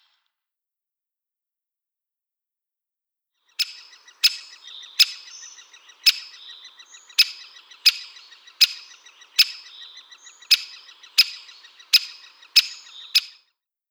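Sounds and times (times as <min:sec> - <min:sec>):
great spotted woodpecker kik contact calls: 0:03.5 - 0:13.4
faint ticking: 0:03.6 - 0:13.4.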